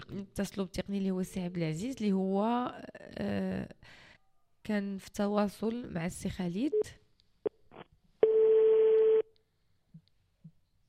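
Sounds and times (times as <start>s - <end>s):
speech: 0.1s - 4.0s, 4.6s - 7.0s
telephone busy signal: 8.2s - 9.2s.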